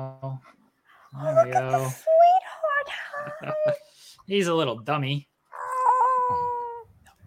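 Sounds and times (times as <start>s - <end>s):
speech: 0.0s - 2.1s, 2.9s - 5.3s
male cat meowing: 5.6s - 6.8s.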